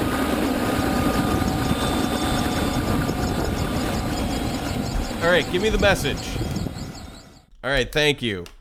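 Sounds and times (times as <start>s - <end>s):
helicopter engine whining: 0.0s - 8.0s
speech: 5.2s - 6.4s, 7.6s - 8.5s.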